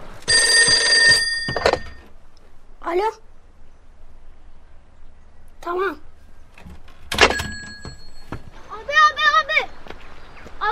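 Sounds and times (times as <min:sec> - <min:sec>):
telephone bell ringing: 0:00.3 - 0:02.0, 0:07.2 - 0:08.3
speech: 0:02.9 - 0:03.3, 0:05.6 - 0:06.1.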